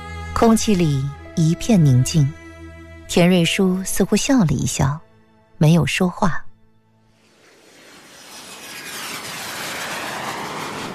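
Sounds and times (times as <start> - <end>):
speech: 0.4 - 2.4, 3.1 - 5.0, 5.6 - 6.4
jet airplane engine roaring as it comes in to land: 7.2 - 10.9.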